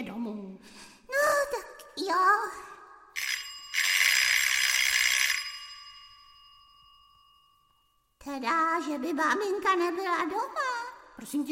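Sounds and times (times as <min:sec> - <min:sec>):
speech: 0:02.0 - 0:02.7, 0:08.4 - 0:11.5
electric doorbell ringing in a building hallway: 0:03.2 - 0:08.0.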